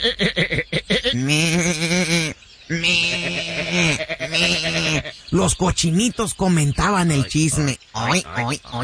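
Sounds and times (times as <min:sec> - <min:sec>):
speech: 0:00.0 - 0:00.5, 0:01.2 - 0:02.0, 0:05.4 - 0:08.8
laughter: 0:00.0 - 0:05.1
sheep bleating: 0:01.4 - 0:05.2.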